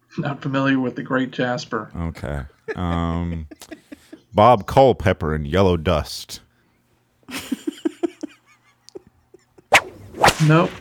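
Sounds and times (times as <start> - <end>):
speech: 0.2 - 3.8, 4.4 - 6.4, 10.4 - 10.7
laughter: 2.0 - 5.2, 7.3 - 9.7
whips cracking: 9.7 - 10.7.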